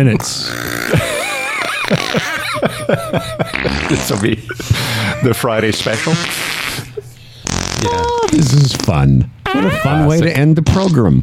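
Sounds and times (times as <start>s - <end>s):
speech: 0.0s - 1.1s, 1.9s - 7.1s, 7.8s - 11.2s
fart sound effects played from a streaming app: 0.4s - 1.1s, 3.5s - 4.4s, 5.7s - 10.2s
laughter: 0.9s - 6.0s.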